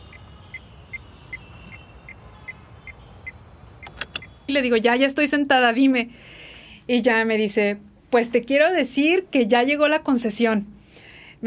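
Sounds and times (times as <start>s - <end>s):
car hazard lights ticking: 2.8s - 4.3s
speech: 4.5s - 10.7s.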